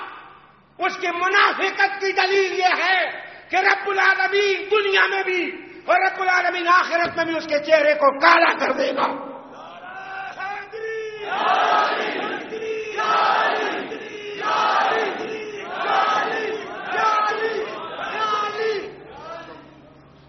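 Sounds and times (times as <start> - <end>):
speech: 1.0 - 9.3, 11.3 - 11.9
large crowd chanting religious slogans in unison: 11.3 - 19.3.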